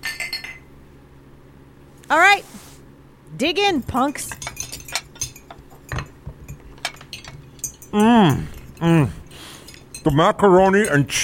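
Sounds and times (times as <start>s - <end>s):
glasses clinking in a toast: 0.0s - 0.7s, 3.9s - 11.2s
speech: 2.1s - 2.6s, 3.3s - 4.5s, 7.9s - 9.2s, 10.0s - 11.2s.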